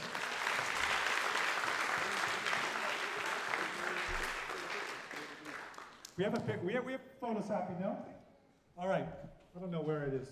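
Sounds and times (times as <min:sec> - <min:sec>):
large audience applauding graduating seniors: 0:00.0 - 0:06.2
speech: 0:06.2 - 0:08.2, 0:08.8 - 0:10.3.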